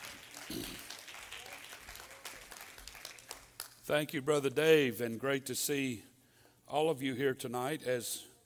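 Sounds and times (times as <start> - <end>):
congregation applauding: 0.0 - 3.9
speech: 0.5 - 0.9, 3.9 - 6.1, 6.7 - 8.3.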